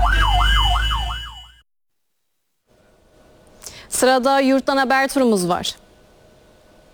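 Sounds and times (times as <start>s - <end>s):
fire engine siren wailing in traffic: 0.0s - 1.6s
speech: 4.0s - 5.8s.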